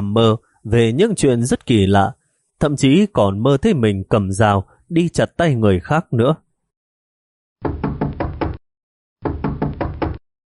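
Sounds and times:
speech: 0:00.2 - 0:06.4
pounding knocks on a room door: 0:07.6 - 0:08.6, 0:09.2 - 0:10.2.

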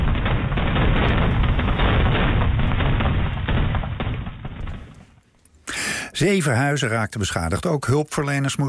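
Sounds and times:
illegal fireworks exploding in a Dutch village: 0:00.0 - 0:05.3
speech: 0:06.2 - 0:08.6.

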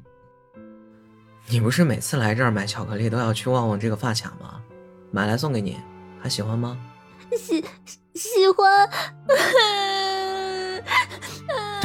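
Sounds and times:
speech: 0:01.4 - 0:10.1
person crouched on a street in the rain crying: 0:08.9 - 0:11.8.

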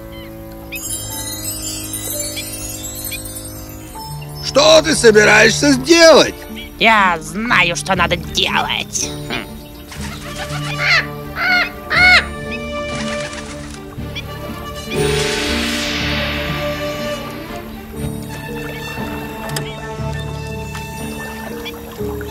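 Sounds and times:
steady tonal background: 0:00.0 - 0:22.3
speech: 0:04.5 - 0:09.4
bird cawing with harsh cries: 0:09.0 - 0:13.2.

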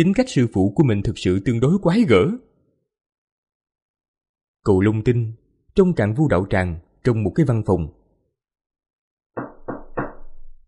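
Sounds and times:
speech: 0:00.0 - 0:02.5, 0:04.6 - 0:08.0
firm knocking on an office door in a training hall: 0:09.4 - 0:10.6.

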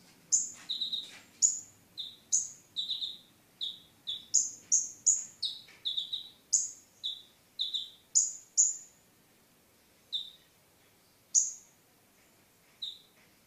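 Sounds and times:
Oriental magpie-robin singing: 0:00.3 - 0:09.0, 0:10.1 - 0:10.5, 0:11.3 - 0:11.7, 0:12.8 - 0:13.1.

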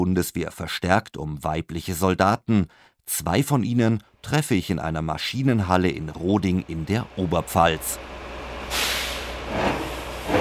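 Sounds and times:
speech: 0:00.0 - 0:08.8, 0:09.5 - 0:10.3
military heavy tractor and armoured vehicle engine rumble in a machine hall: 0:05.9 - 0:10.3
air hiss: 0:08.7 - 0:10.3.

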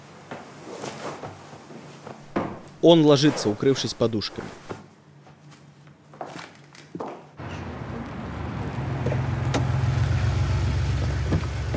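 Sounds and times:
speech: 0:02.8 - 0:04.6
car driving up with engine rumble: 0:07.4 - 0:11.7.

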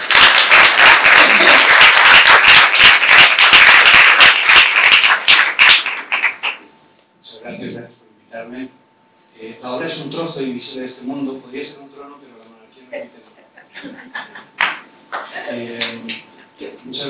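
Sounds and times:
audience applause at a commemoration event: 0:00.0 - 0:06.6
laughter: 0:01.0 - 0:01.9, 0:13.0 - 0:14.6
speech: 0:10.3 - 0:12.2.

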